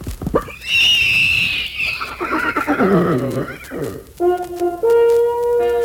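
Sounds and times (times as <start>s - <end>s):
loud shrill horse whinny: 0.4s - 4.0s
speech: 2.8s - 5.7s.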